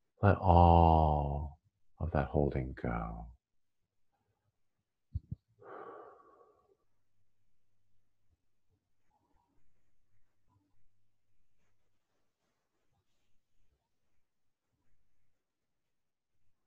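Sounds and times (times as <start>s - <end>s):
speech: 0.2s - 1.4s, 2.1s - 3.4s
slow deep relaxation breathing exhale: 5.6s - 6.8s
soft rustles: 8.7s - 15.4s.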